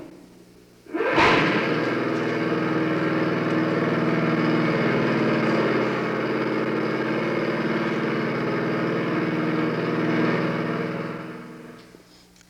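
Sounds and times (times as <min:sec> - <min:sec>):
small lawnmower engine running: 0:00.9 - 0:12.1.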